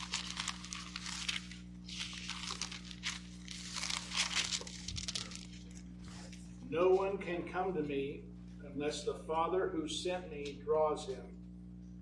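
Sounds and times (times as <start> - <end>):
people flipping through thin Bible pages: 0.0 - 6.6
faint steady hum: 0.0 - 12.0
speech: 6.7 - 11.4.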